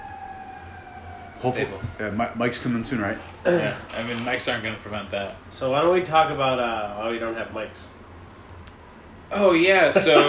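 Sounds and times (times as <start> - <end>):
ambulance siren: 0.0 - 4.2
low traffic-like rumble: 0.0 - 10.2
speech: 1.4 - 8.0, 9.3 - 10.2.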